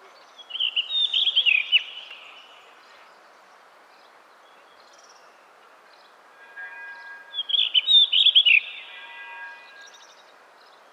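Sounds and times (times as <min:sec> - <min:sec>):
faint steady background hiss: 0:00.0 - 0:10.9
bird song with bright rapid twittering high notes: 0:00.4 - 0:02.8, 0:06.4 - 0:10.3.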